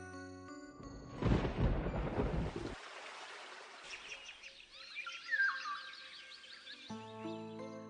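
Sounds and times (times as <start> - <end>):
loud roll of thunder: 1.1 - 2.8
birds chirping: 3.9 - 7.7.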